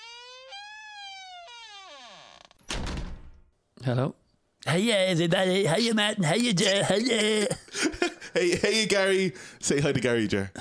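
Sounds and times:
door creaking open: 0:00.0 - 0:03.4
speech: 0:03.9 - 0:10.5
laughter: 0:06.6 - 0:09.3.

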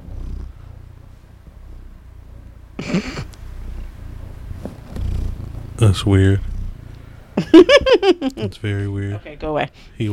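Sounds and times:
cat purring: 0:00.0 - 0:07.8
speech: 0:02.8 - 0:03.3, 0:05.8 - 0:06.5, 0:07.6 - 0:10.1
laughter: 0:07.4 - 0:08.5.

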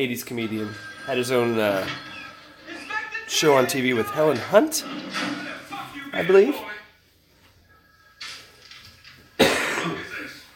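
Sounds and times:
speech: 0:00.0 - 0:02.1, 0:03.3 - 0:06.7
person coughing from a lingering cold: 0:09.4 - 0:10.2.

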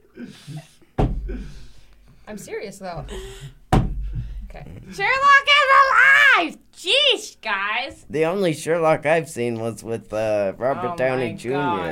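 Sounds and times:
speech: 0:00.2 - 0:01.7, 0:02.3 - 0:03.6, 0:04.5 - 0:11.9
heavy slam: 0:03.7 - 0:04.3.

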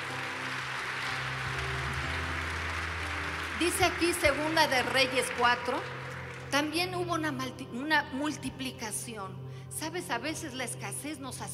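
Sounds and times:
audience applause: 0:00.0 - 0:06.6
speech: 0:03.6 - 0:11.5.

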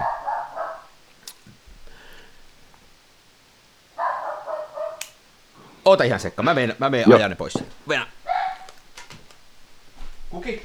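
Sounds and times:
household dog barking: 0:00.0 - 0:01.1, 0:03.9 - 0:05.2, 0:07.0 - 0:07.6, 0:08.2 - 0:08.9
speech: 0:05.8 - 0:08.2, 0:10.3 - 0:10.6.

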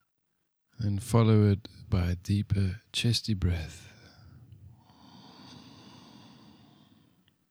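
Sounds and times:
speech: 0:00.8 - 0:03.9
nasal sniffing inhalation: 0:03.9 - 0:07.2.

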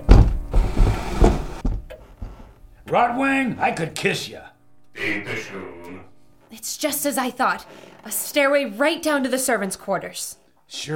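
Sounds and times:
heavy wooden bookcase secret door scraping and rumbling shut: 0:00.0 - 0:01.8
speech: 0:02.9 - 0:10.9.

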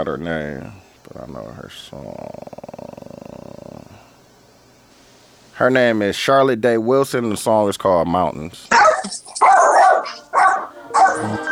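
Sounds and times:
speech: 0:00.0 - 0:02.6, 0:05.6 - 0:08.8
high hiss: 0:00.0 - 0:07.4
dog barking at the door: 0:08.7 - 0:11.4.

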